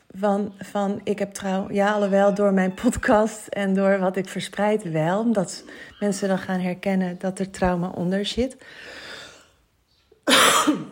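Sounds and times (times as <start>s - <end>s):
speech: 0.2s - 9.0s
person giving a loud raspy cough: 10.2s - 10.9s.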